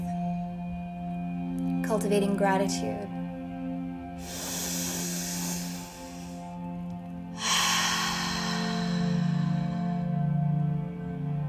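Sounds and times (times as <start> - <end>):
soft steady music tones: 0.0 - 11.4
speech: 1.9 - 3.2
big deep slow breath during morning breathing practice: 4.1 - 11.4.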